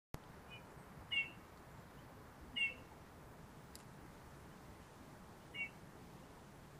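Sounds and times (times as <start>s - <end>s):
faint steady background hiss: 0.2s - 6.7s
Eurasian bullfinch Pyrrhula pyrrhula soft low piping calls: 0.4s - 3.0s, 5.4s - 5.9s.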